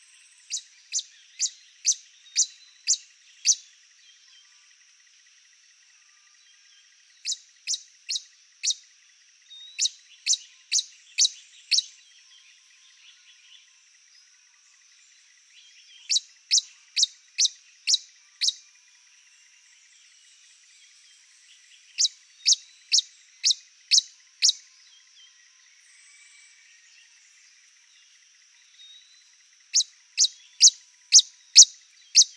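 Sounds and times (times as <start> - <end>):
Colibri delphinae hummingbird calling: 0.5 - 3.7, 7.2 - 8.8, 9.5 - 12.0, 15.6 - 18.6, 22.0 - 24.6, 28.9 - 32.3.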